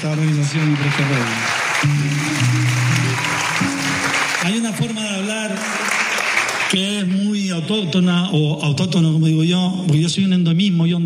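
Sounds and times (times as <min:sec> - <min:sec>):
speech: 0:00.0 - 0:03.7, 0:04.4 - 0:05.9, 0:06.7 - 0:11.0
audience applause: 0:00.0 - 0:07.2.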